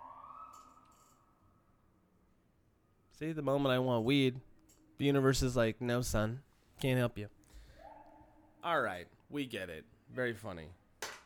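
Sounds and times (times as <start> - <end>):
distant emergency vehicle siren: 0.0 - 3.9
speech: 3.2 - 7.4, 8.6 - 10.8.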